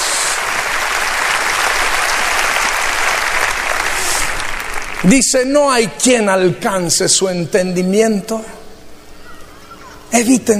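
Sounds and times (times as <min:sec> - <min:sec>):
audience applauding: 0:00.0 - 0:05.6
speech: 0:05.0 - 0:08.6, 0:10.2 - 0:10.5.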